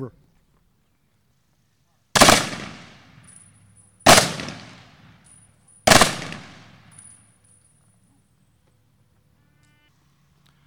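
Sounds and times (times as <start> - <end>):
long fading echo of rifle volleys: 2.2 - 3.4, 4.0 - 7.1
rifle salute volleys fired at a memorial ceremony: 2.2 - 3.4, 4.0 - 7.2.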